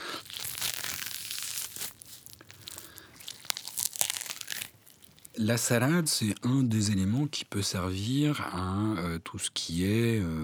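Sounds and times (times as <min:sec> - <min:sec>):
grapefruit peel tearing with fibrous ripping and crackling: 0:00.0 - 0:05.8
speech: 0:05.4 - 0:10.4.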